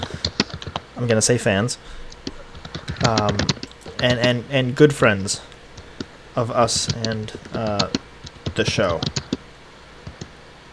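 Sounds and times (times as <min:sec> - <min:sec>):
low hum: 0:00.0 - 0:10.7
speech: 0:01.0 - 0:02.4, 0:03.0 - 0:05.5, 0:06.4 - 0:08.0, 0:08.6 - 0:09.2
keyboard clicks: 0:02.1 - 0:04.4, 0:06.7 - 0:09.4.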